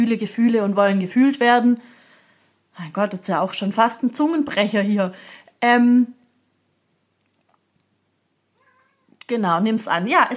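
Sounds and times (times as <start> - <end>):
speech: 0.0 - 2.0, 2.8 - 6.2, 9.3 - 10.3
pet cat meowing: 8.6 - 9.2.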